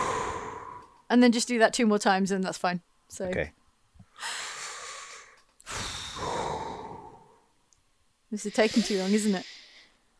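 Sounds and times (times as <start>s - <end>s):
deep breathing in and out: 0.0s - 1.0s, 4.1s - 7.5s, 8.5s - 10.1s
speech: 1.1s - 3.6s, 4.2s - 4.4s, 8.3s - 9.6s.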